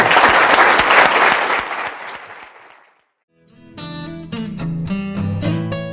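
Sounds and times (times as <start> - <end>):
large audience applauding after a lecture: 0.0 - 3.0.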